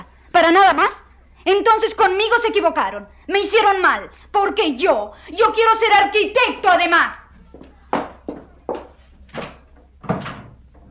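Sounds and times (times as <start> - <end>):
speech: 0.4 - 7.2
wooden door being shut hard as a woman leaves: 9.4 - 10.6.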